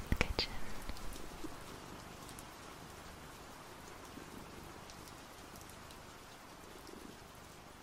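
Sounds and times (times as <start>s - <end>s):
steady rain falling: 0.0s - 7.8s.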